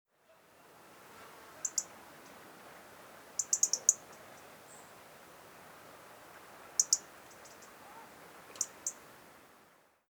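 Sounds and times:
faint steady hiss: 0:00.1 - 0:10.0
European robin Erithacus rubecula ticking calls: 0:01.6 - 0:02.4, 0:03.4 - 0:04.9, 0:06.7 - 0:09.0.

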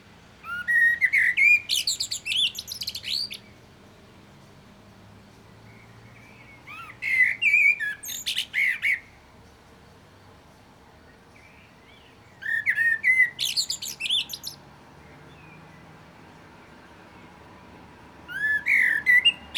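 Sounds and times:
common blackbird Turdus merula whistled warbling song with shrill twitters: 0:00.4 - 0:03.6, 0:05.7 - 0:09.2, 0:11.4 - 0:14.6, 0:18.3 - 0:19.5.

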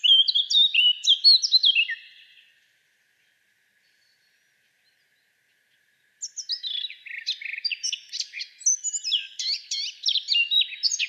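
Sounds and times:
Eurasian blackcap Sylvia atricapilla singing a hurried jumbled warble: 0:00.0 - 0:02.4, 0:06.2 - 0:11.0.

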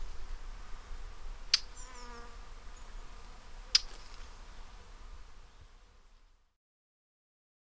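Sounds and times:
soft hiss: 0:00.0 - 0:06.6
faint thin chirps from other birds: 0:01.5 - 0:02.2, 0:03.7 - 0:04.4.

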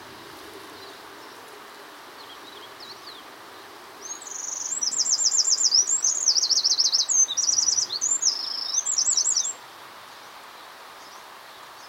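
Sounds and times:
Eurasian wren Troglodytes troglodytes song with trills and rattles: 0:00.7 - 0:11.8.

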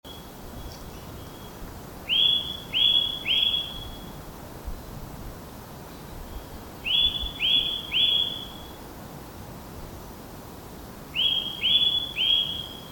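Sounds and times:
Eurasian nuthatch Sitta europaea whistled calls: 0:00.1 - 0:04.0, 0:06.3 - 0:08.8, 0:11.2 - 0:12.9
faint steady hiss: 0:00.1 - 0:12.9.

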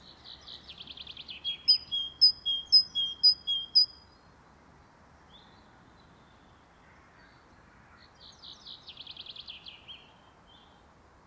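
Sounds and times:
Great tit high whistled notes alternating between two pitches: 0:01.6 - 0:03.9.

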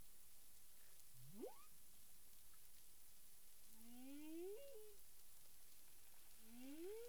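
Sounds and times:
persistent background hiss: 0:00.0 - 0:07.0
humpback whale whoop and moans in the Caribbean: 0:03.9 - 0:05.0.

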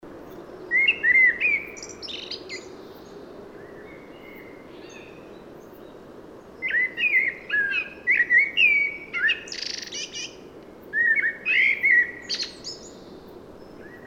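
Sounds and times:
common blackbird Turdus merula singing mellow fluted warbles and squeaky twitters: 0:00.7 - 0:02.7, 0:06.6 - 0:10.4, 0:11.0 - 0:13.1.

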